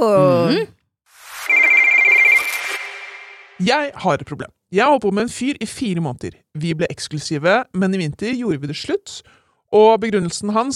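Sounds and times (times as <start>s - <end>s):
speech: 0.0s - 0.8s, 3.6s - 10.7s
telephone ringing with a trilling electronic bell: 1.4s - 3.5s.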